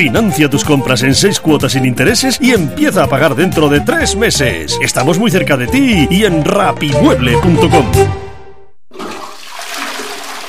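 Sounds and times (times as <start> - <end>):
speech: 0.0 - 8.2
toilet flushing: 8.9 - 10.4.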